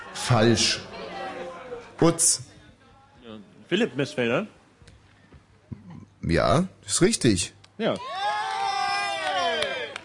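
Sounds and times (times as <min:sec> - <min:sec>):
speech: 0:00.3 - 0:00.9, 0:02.0 - 0:02.5, 0:03.7 - 0:04.6, 0:06.3 - 0:08.2
small group of quiz players cheering and whooping: 0:08.0 - 0:10.0.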